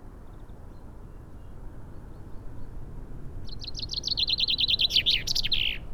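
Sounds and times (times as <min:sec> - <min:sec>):
common chaffinch singing, Fringilla coelebs: 0:03.5 - 0:05.8.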